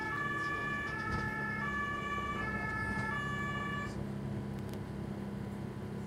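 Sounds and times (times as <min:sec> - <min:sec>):
ambulance siren wailing in two-tone bursts: 0:00.0 - 0:04.0
road traffic rumble: 0:00.0 - 0:06.0.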